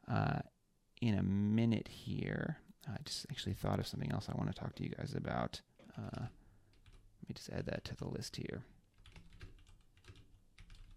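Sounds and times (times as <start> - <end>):
speech: 0.1 - 6.4, 7.2 - 8.8
typing on a mechanical keyboard: 6.0 - 7.0, 8.9 - 10.9.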